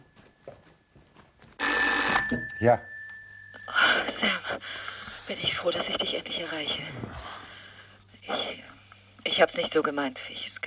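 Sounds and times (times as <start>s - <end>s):
telephone ringing in a living room: 1.6s - 4.8s
speech: 2.3s - 2.9s, 5.3s - 7.5s, 9.3s - 10.6s.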